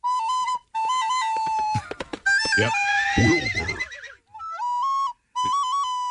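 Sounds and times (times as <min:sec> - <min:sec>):
recorder-like flute playing: 0:00.0 - 0:06.0
horse whinnying: 0:02.4 - 0:04.3
speech: 0:02.6 - 0:03.9.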